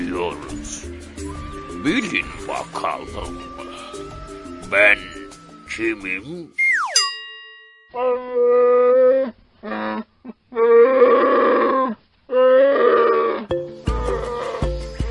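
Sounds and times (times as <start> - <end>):
speech: 0.1 - 1.2, 1.8 - 3.8, 4.7 - 6.6, 7.9 - 8.6
brief sweeping tone: 6.6 - 7.9
bear roaring and growling: 8.2 - 14.9.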